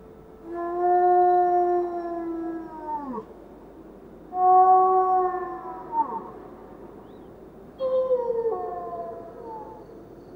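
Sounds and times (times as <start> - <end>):
female wolf howling amid swirling snow: 0.4 - 3.3, 4.3 - 6.5, 7.8 - 10.3.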